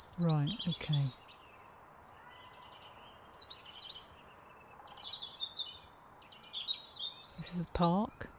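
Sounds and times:
coal tit calls in a park: 0:00.0 - 0:02.7, 0:05.1 - 0:08.3
speech: 0:00.1 - 0:01.4, 0:07.5 - 0:08.3.

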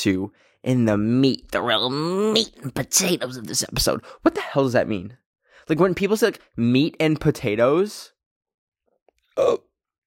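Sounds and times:
speech: 0:00.0 - 0:08.1, 0:09.4 - 0:09.7
person hiccuping: 0:09.4 - 0:09.7.

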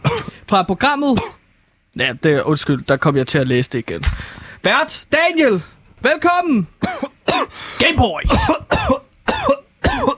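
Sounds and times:
man with a pressed rib coughing harshly: 0:00.0 - 0:00.4, 0:01.2 - 0:01.4, 0:06.8 - 0:10.1
speech: 0:00.5 - 0:01.4, 0:02.0 - 0:10.1.

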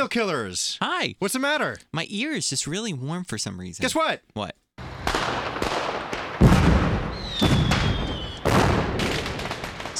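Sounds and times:
speech: 0:00.0 - 0:04.6
string of fireworks with sharp booms and crackling bursts: 0:04.8 - 0:09.9
shrill whistling firework rocket streaking: 0:05.0 - 0:09.8.

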